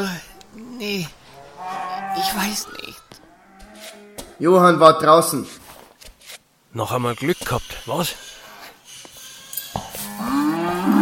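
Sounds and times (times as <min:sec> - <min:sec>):
cow that had broken loose mooing: 0:01.4 - 0:04.4, 0:10.0 - 0:11.0
speech: 0:02.2 - 0:03.0, 0:04.4 - 0:05.6, 0:06.8 - 0:08.3.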